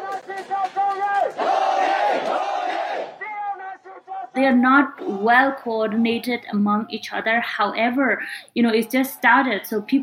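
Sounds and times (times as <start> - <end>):
large crowd of demonstrators shouting and chanting at protests: 0.0 - 6.0
speech: 4.4 - 10.0.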